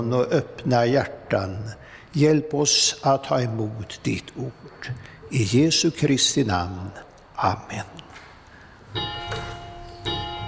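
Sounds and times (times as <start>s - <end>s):
speech: 0.0s - 8.0s
church bells ringing: 8.9s - 10.4s.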